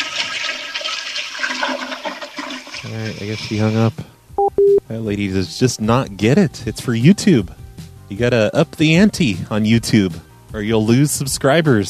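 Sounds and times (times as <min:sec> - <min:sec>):
toilet flushing in an apartment: 0:00.0 - 0:03.9
speech: 0:02.8 - 0:04.1, 0:04.9 - 0:11.8.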